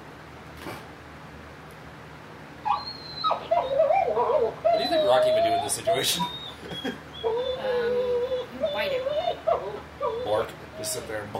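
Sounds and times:
low hum: 0.0 - 11.3
speech: 0.6 - 0.9, 5.1 - 7.1, 10.4 - 11.3
excited dogs whimpering and yipping: 2.6 - 11.2.

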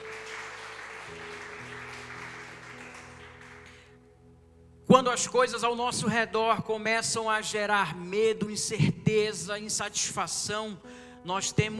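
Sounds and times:
large congregation clapping loudly: 0.0 - 4.0
speech: 4.9 - 11.7.

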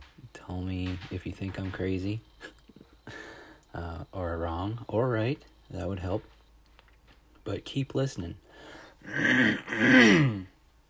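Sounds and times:
speech: 0.5 - 2.5, 3.7 - 6.4, 7.4 - 8.4, 9.0 - 10.5
throat clearing in voiced rasping bursts: 9.1 - 10.5.

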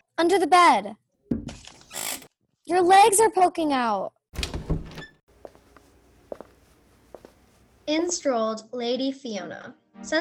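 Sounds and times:
speech: 0.2 - 1.0, 2.7 - 4.2, 7.9 - 10.1
door opening with rattle and clunk: 4.4 - 5.2
faint footsteps or taps: 5.3 - 8.3.

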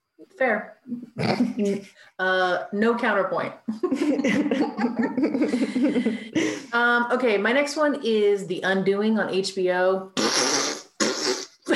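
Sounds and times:
speech: 0.2 - 10.7
voice imitating a fart with raspberry bursts: 0.9 - 1.8, 10.2 - 11.7
laughter: 1.2 - 1.9, 3.7 - 6.7.

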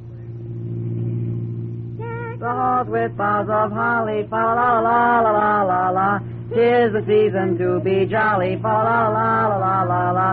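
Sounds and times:
car engine accelerating: 0.0 - 10.3
speech: 2.4 - 10.3.

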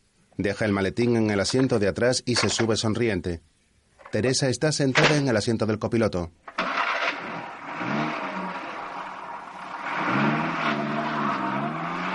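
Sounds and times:
speech: 0.4 - 6.6
1950s convertible car engine speeding through narrow village streets: 6.5 - 12.1.

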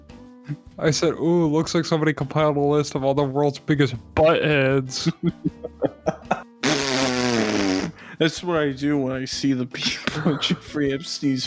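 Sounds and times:
speech: 0.5 - 5.9, 8.2 - 11.4
laughter: 4.9 - 6.5, 9.8 - 11.4
mouth puffing pops: 5.6 - 8.0
fart sound imitated by blowing a raspberry with the lips: 6.2 - 8.0.

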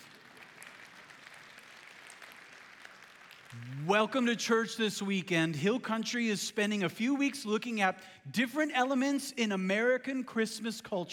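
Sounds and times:
large audience applauding at a church service: 0.0 - 3.9
speech: 3.6 - 11.1.

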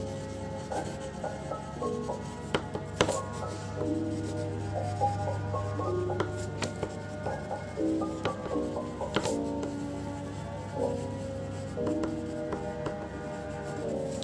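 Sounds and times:
soft background music with low drone and held melody: 0.0 - 14.2
scribbling sharp taps and scratchy clicks: 0.6 - 4.3, 6.1 - 9.8, 11.8 - 13.4.

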